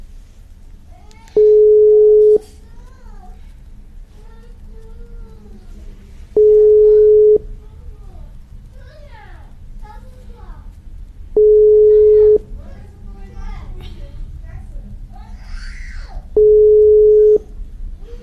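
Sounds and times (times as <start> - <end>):
ringback tones of an unanswered telephone call: 1.4 - 2.4, 6.4 - 7.4, 11.4 - 12.4, 16.4 - 17.5.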